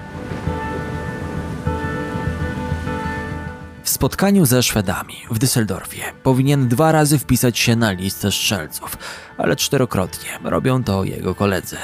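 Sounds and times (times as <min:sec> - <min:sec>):
heavy rain falling: 0:00.0 - 0:03.7
speech: 0:04.0 - 0:11.8.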